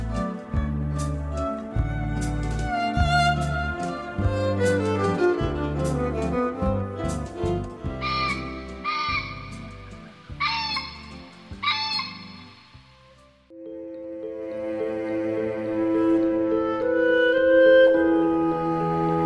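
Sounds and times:
soft continuous musical background: 0.0s - 19.2s
bird calling from the mountain in early morning: 8.0s - 12.9s.

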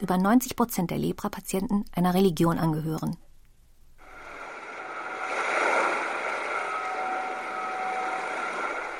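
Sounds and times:
speech: 0.0s - 3.2s
ocean waves washing: 4.0s - 8.9s.

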